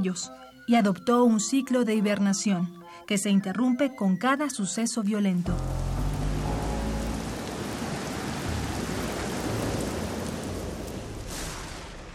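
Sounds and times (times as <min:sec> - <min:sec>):
speech: 0:00.0 - 0:06.0
heavy rain on a flooded street: 0:05.5 - 0:12.1.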